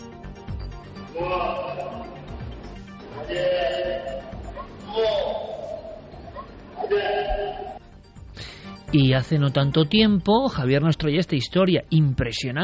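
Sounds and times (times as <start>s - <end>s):
elephant bleating vocalization: 1.1s - 2.3s, 3.0s - 7.8s
speech: 8.9s - 12.6s.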